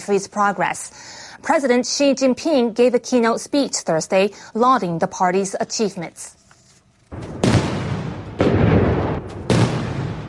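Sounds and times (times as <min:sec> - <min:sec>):
speech: 0:00.0 - 0:06.4
cannon salute blasts outdoors: 0:07.1 - 0:10.2.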